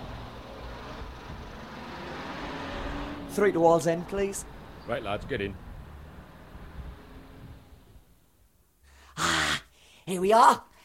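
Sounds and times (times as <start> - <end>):
bus pulling up with low engine rumble: 0.0 - 8.2
broad road noise: 0.0 - 9.6
speech: 3.4 - 5.6, 10.1 - 10.7.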